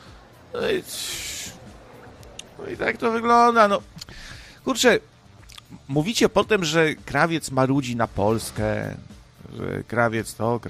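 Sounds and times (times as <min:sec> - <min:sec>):
speech: 0:00.5 - 0:01.6, 0:02.6 - 0:04.0, 0:04.6 - 0:05.1, 0:05.7 - 0:10.6
man panting heavily after a fight: 0:04.1 - 0:04.6.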